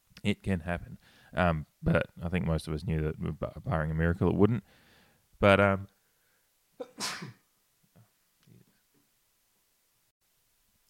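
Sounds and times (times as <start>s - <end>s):
speech: 0.2s - 4.8s, 5.4s - 6.0s, 6.9s - 7.4s
faint breathy sounds: 0.9s - 1.4s, 4.6s - 5.3s, 5.9s - 6.6s
single sharp loud sneeze close to the microphone: 6.8s - 7.4s.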